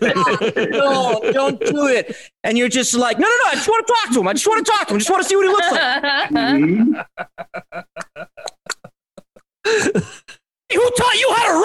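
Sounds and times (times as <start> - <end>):
laughter: 0.0 - 2.2, 5.0 - 10.0
speech: 0.0 - 8.3, 9.7 - 11.6
person clicking tongue imitating trotting horse hooves: 8.0 - 9.5.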